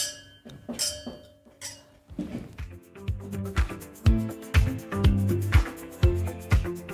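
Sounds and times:
wine glasses clinking in a toast: 0.0s - 2.0s
rhythmic music track with drums and bass: 2.6s - 6.9s.

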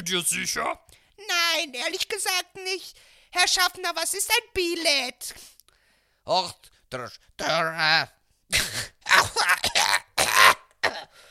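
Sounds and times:
speech: 0.0s - 5.5s, 6.3s - 9.8s
smoker coughing: 8.5s - 11.2s.

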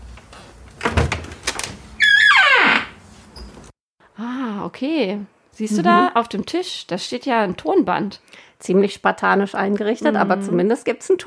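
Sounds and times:
escape room door creaking open: 0.8s - 3.7s
speech: 4.2s - 11.2s.

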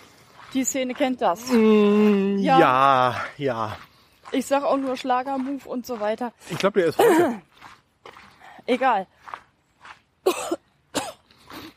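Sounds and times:
speech: 0.5s - 7.8s, 8.7s - 9.4s
person coughing after inhaling a small piece of candy: 7.0s - 7.4s, 10.2s - 11.3s.

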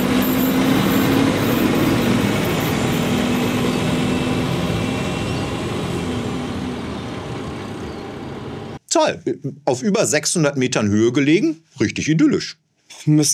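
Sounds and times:
regional train departing from a station at over 600 metres altitude: 0.0s - 8.8s
speech: 9.0s - 13.3s.

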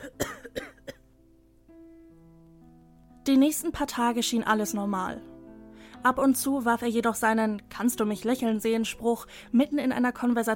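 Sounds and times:
dry coughs: 0.0s - 1.0s
speech: 3.3s - 5.3s, 6.0s - 10.5s.

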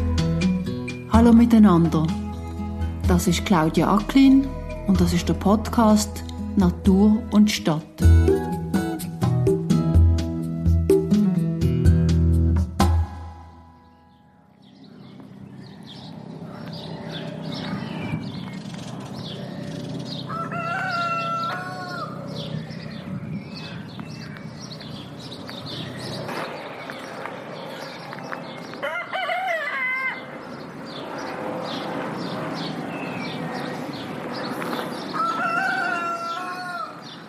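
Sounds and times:
plane in the sky: 0.0s - 37.2s
speech: 1.2s - 2.2s, 3.1s - 8.3s
small birds chirping: 13.8s - 28.9s, 30.1s - 37.2s
rooster crowing on an urban neighbourhood farm in Zürich Switzerland: 20.2s - 22.3s, 28.8s - 30.4s, 35.0s - 37.2s.

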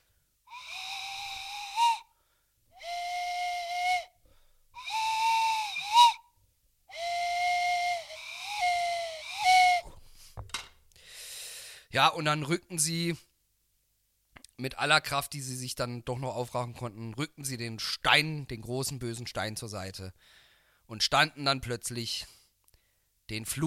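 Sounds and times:
breathy pipe playing a slow mournful melody: 0.5s - 2.0s, 2.8s - 4.2s, 4.8s - 6.2s, 6.9s - 9.9s
speech: 12.0s - 13.3s, 14.6s - 22.4s, 23.3s - 23.6s.

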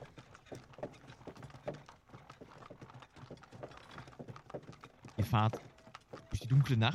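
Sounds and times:
horse-drawn carriage setting off at night: 0.0s - 6.7s
horse hooves clip-clopping: 0.0s - 6.9s
speech: 5.3s - 5.7s, 6.5s - 6.9s.

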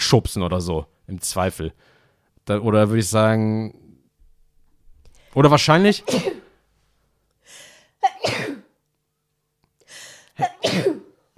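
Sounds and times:
speech: 0.1s - 3.8s, 5.3s - 6.4s
loud sneezes: 6.0s - 6.6s, 8.0s - 8.7s, 10.4s - 11.2s.

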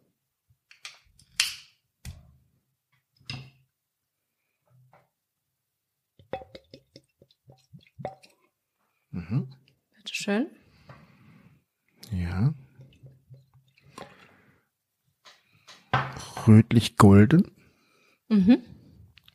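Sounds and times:
clicks clinks and handling noises: 6.2s - 8.4s
speech: 9.2s - 9.6s, 10.3s - 10.6s, 16.5s - 17.6s, 18.3s - 18.8s.

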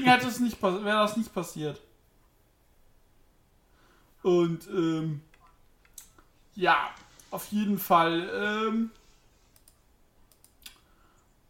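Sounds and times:
speech: 0.0s - 1.9s, 4.2s - 5.3s, 6.6s - 9.0s
computer mouse clicks: 9.5s - 11.3s.

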